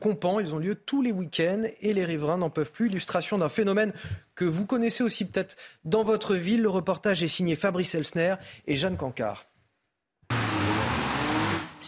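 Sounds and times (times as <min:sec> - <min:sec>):
speech: 0:00.0 - 0:09.5
car engine revving during drifting: 0:10.3 - 0:11.8.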